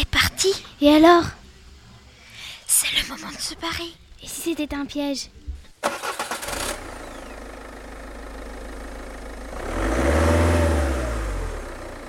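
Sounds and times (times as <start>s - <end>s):
speech: 0.4s - 1.4s, 2.7s - 6.0s
car engine starter whirring: 5.8s - 12.0s.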